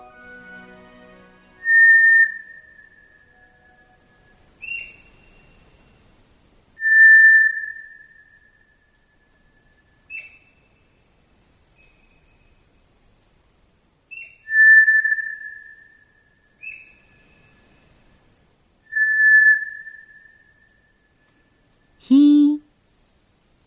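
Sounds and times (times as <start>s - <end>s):
White's thrush giving long thin flute-like whistles at night in a forest: 1.6s - 6.0s, 6.8s - 10.0s, 14.4s - 17.8s, 18.9s - 21.3s, 22.9s - 23.6s.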